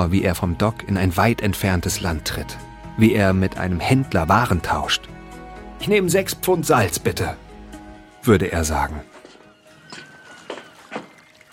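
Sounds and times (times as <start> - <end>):
speech: 0.0 - 5.1, 5.8 - 7.4, 8.2 - 9.1
footsteps: 9.0 - 11.5.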